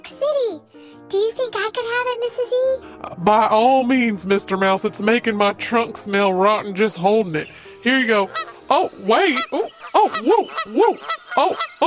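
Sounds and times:
speech: 0.2s - 11.8s
goose honking: 7.9s - 11.8s.

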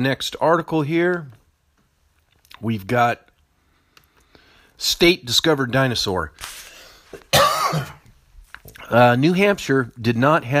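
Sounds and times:
speech: 0.0s - 1.4s, 2.6s - 3.3s, 4.8s - 8.0s, 8.7s - 10.5s
throat clearing: 7.2s - 8.0s
harsh cough: 7.2s - 8.1s.

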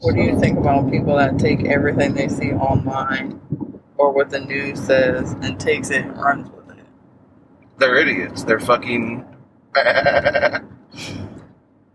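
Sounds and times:
speech: 0.0s - 6.6s, 7.8s - 11.4s
person imitating a sheep bleating: 9.8s - 10.6s.

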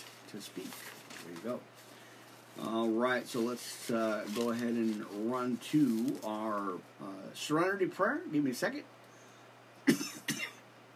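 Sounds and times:
low steady hum: 0.0s - 10.9s
speech: 0.3s - 1.9s, 2.6s - 9.0s
harsh coughs: 9.9s - 10.6s.

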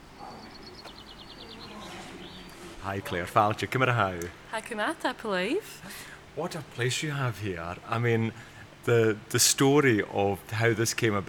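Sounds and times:
birds singing outdoors in sunshine: 0.0s - 4.5s
low hum: 0.0s - 11.2s
speech: 2.8s - 11.2s.

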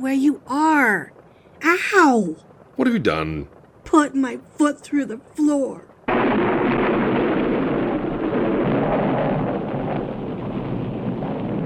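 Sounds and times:
speech: 0.0s - 6.7s
thunder crash with lightning: 6.1s - 11.6s.

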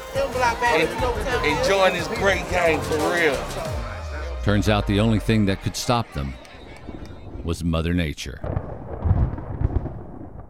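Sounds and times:
speech: 0.3s - 3.8s, 4.4s - 6.4s, 7.4s - 8.5s
deep rumbling thunder from a lightning storm: 8.4s - 10.4s.

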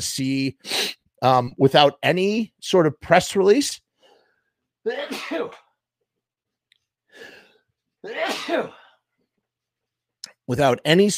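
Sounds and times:
speech: 0.0s - 3.8s, 4.8s - 5.6s, 8.0s - 8.8s, 10.5s - 11.1s
breathy sniff: 0.6s - 1.0s, 7.1s - 7.6s
person sneezing: 4.9s - 5.7s, 8.0s - 9.0s.

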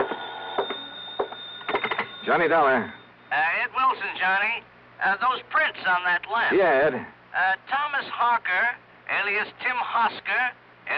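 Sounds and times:
telephone bell ringing in an apartment: 0.0s - 3.4s
speech: 2.3s - 10.9s.

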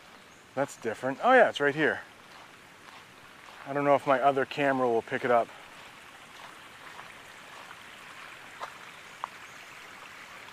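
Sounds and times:
running water rushing in a stream: 0.0s - 10.5s
speech: 0.6s - 2.1s, 3.7s - 5.6s
brief drip-like water splashes: 1.9s - 10.5s.

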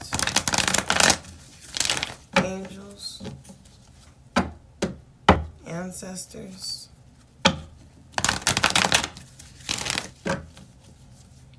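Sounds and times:
tarot cards being shuffled: 0.0s - 4.2s, 8.1s - 11.3s
speech: 5.9s - 6.8s.

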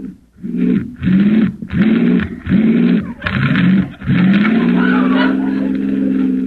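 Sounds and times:
car engine turning over and starting: 0.0s - 6.4s
laughter: 2.8s - 6.4s.

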